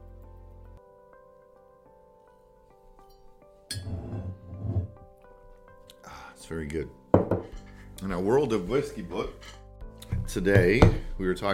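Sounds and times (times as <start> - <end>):
glass clattering and handling noise: 3.7 - 5.0
glasses of whiskey clinking together in a toast: 3.7 - 5.0
speech: 6.5 - 7.0, 8.0 - 9.6, 10.3 - 11.5.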